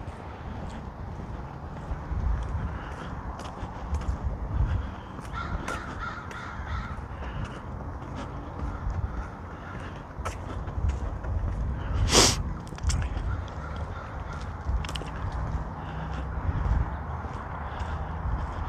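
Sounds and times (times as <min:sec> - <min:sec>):
outdoor noise: 0:00.0 - 0:18.6
crows cawing from a tree overhead: 0:02.6 - 0:03.2, 0:04.6 - 0:10.6, 0:13.1 - 0:18.6.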